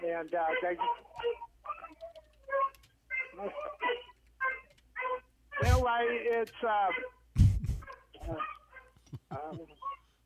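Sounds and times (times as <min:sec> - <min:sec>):
speech: 0:00.2 - 0:01.4, 0:03.4 - 0:03.9, 0:05.6 - 0:07.1, 0:08.3 - 0:08.5, 0:09.3 - 0:09.9
dogs yipping and whining: 0:00.4 - 0:05.9, 0:07.8 - 0:10.2
dogs barking: 0:00.4 - 0:06.0, 0:06.8 - 0:07.2, 0:07.8 - 0:09.1.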